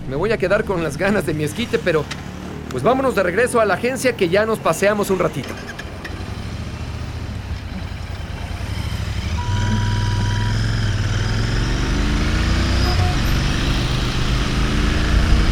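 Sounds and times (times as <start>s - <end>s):
speech: 0.1s - 5.8s
Royal Enfield Classic 500 single-cylinder motorcycle engine running: 5.5s - 15.5s.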